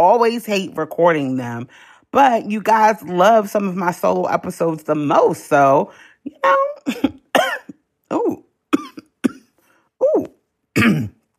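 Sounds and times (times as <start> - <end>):
speech: 0.0 - 7.2, 8.1 - 8.4, 10.1 - 11.1
harsh hacking coughs from one person: 7.3 - 7.8, 8.7 - 9.6, 10.8 - 11.2
throat clearing: 10.8 - 11.2.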